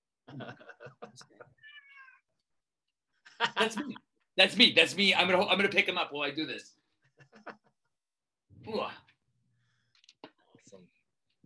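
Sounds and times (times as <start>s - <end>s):
laughter: 0.3s - 1.6s, 7.0s - 8.0s
male cat drawn-out loud meow: 1.6s - 2.3s
speech: 3.6s - 6.8s.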